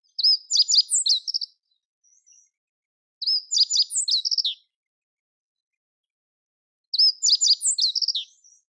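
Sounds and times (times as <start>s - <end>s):
birds: 0.0s - 2.6s, 3.2s - 4.8s, 6.9s - 8.6s
meadow bunting song: 0.0s - 2.6s, 3.2s - 4.8s, 7.0s - 8.6s.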